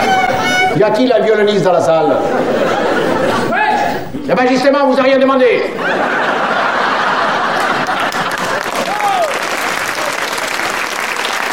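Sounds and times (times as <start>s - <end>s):
speech: 0.8s - 3.6s, 4.2s - 6.3s
laughter: 2.0s - 4.3s, 5.6s - 10.8s
applause from a large audience: 6.2s - 11.5s.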